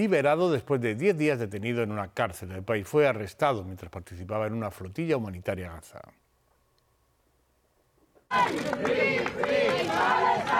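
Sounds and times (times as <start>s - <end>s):
speech: 0.0s - 6.2s, 8.3s - 10.3s
large crowd at airport chanting in unison: 8.3s - 10.5s.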